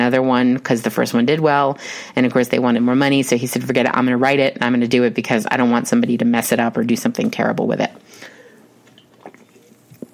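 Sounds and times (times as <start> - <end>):
speech: 0.0 - 8.3
person sipping a drink: 8.2 - 10.1
wet slurping and swallowing: 8.8 - 10.1.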